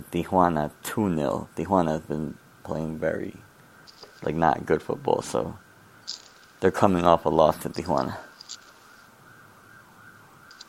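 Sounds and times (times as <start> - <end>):
speech: 0.0 - 3.5, 4.2 - 8.3
low rumble of city noise: 0.0 - 10.6
ambulance siren wailing in New York: 8.8 - 10.6.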